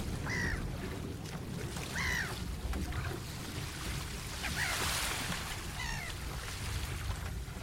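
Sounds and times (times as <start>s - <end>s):
steady rumble of water and waves lapping against a boat: 0.0s - 7.6s
seagulls squawking: 0.2s - 0.6s, 1.8s - 2.4s, 5.6s - 6.2s.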